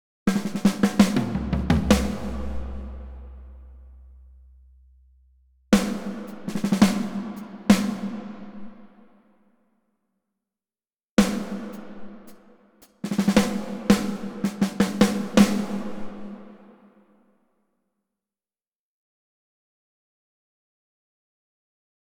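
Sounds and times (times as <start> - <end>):
drums in the hall of the National Academy of Music in Kyiv: 0.3 - 4.4, 5.8 - 9.1, 11.2 - 17.0.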